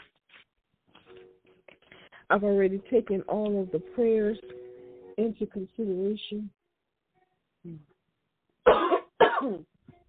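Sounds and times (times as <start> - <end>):
speech: 2.3 - 4.6, 5.2 - 6.6, 7.6 - 7.9, 9.4 - 9.8
person coughing from a tickling throat: 8.7 - 9.7.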